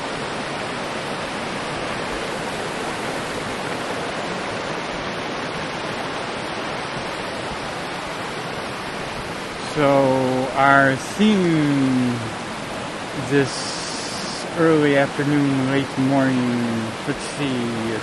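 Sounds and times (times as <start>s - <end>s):
mountain creek water rushing: 0.0s - 18.0s
speech: 9.8s - 12.3s, 13.3s - 13.7s, 14.6s - 18.0s.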